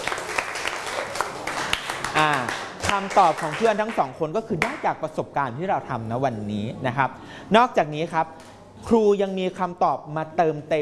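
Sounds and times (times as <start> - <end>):
students clapping for classmates in a classroom: 0.0 - 4.1
speech: 2.2 - 10.7.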